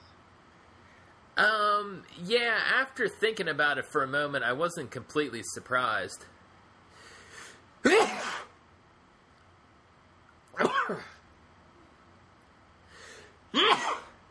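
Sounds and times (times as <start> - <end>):
speech: 1.4 - 6.4, 10.9 - 11.1
sharp intake of breath: 6.9 - 7.7, 12.9 - 13.3
forceful sneezes: 7.9 - 8.5, 10.5 - 11.2, 13.5 - 14.2.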